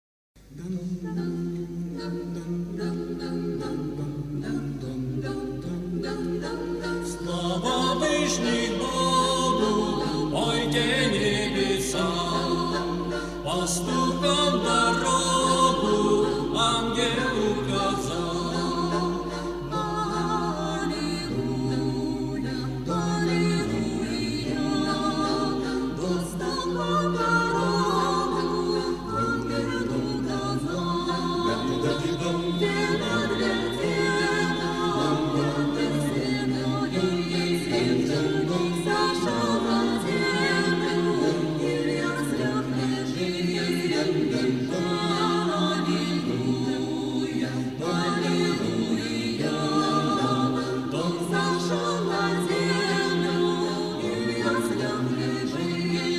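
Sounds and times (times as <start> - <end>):
French Christmas carol: 0.4 - 56.1.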